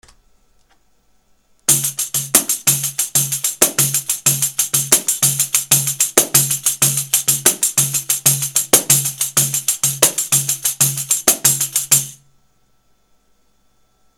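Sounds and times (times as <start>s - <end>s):
pandeiro groove: 1.7s - 12.2s.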